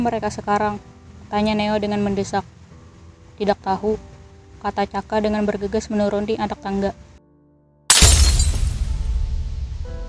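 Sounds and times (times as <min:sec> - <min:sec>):
speech: 0:00.0 - 0:02.6, 0:03.4 - 0:07.1
row of classroom window glass shattering: 0:07.9 - 0:09.0
loud boom: 0:07.9 - 0:10.0.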